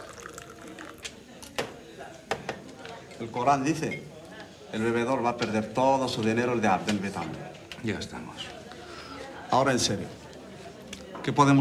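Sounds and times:
tea being poured: 0.0 - 1.6
speech: 3.2 - 8.6, 9.5 - 10.2, 11.2 - 11.5.

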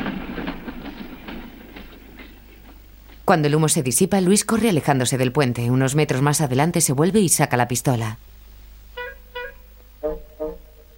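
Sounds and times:
clickety-clack of train wheels: 0.0 - 3.2
passing train rumbling near a bridge: 0.0 - 10.9
speech: 3.3 - 8.3.

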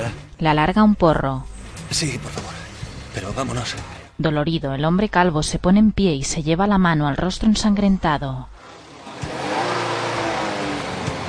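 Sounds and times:
speech: 0.1 - 2.4, 3.2 - 8.5
car engine roaring as the vehicle drives away: 1.4 - 4.2, 8.5 - 11.2.

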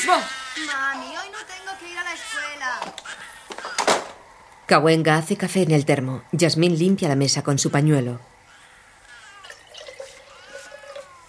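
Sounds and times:
speech: 0.0 - 4.1, 4.7 - 8.4
water pouring into a container: 9.4 - 11.1.

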